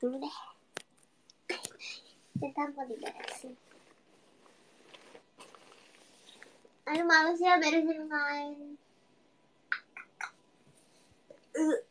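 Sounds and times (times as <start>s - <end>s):
speech: 0.0s - 0.5s, 2.4s - 3.8s, 6.9s - 8.9s, 11.6s - 11.8s
mouth or throat clicks: 9.7s - 10.4s.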